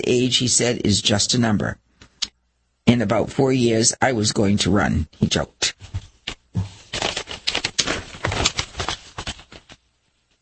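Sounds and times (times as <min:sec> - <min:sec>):
speech: 0:00.0 - 0:01.8, 0:02.9 - 0:06.0
newspaper pages rustling and crinkling while being handled: 0:05.8 - 0:10.3.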